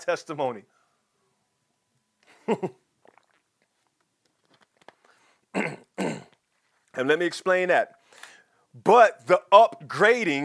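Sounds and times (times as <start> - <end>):
speech: 0.0 - 0.8, 2.5 - 2.8, 7.0 - 8.0, 8.7 - 10.4
wet mouth clicks and swallowing noises: 3.0 - 5.2
sipping a drink: 3.0 - 7.0.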